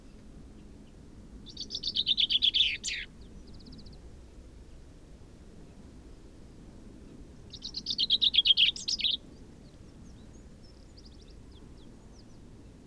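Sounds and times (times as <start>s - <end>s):
Common chaffinch Fringilla coelebs singing a descending trill: 1.5s - 3.1s, 7.5s - 9.2s.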